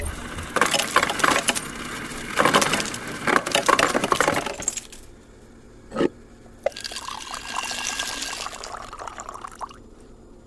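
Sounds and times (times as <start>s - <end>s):
ice cubes clattering into a glass: 0.2s - 5.1s
water pouring into a glass: 6.7s - 9.8s.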